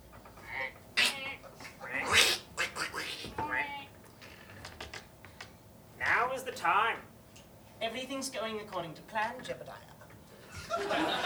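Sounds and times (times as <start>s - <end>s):
person imitating ducks with nasal honking quacks: 0.4s - 3.9s
speech: 8.0s - 9.9s, 10.7s - 11.2s
laughter: 10.5s - 11.2s.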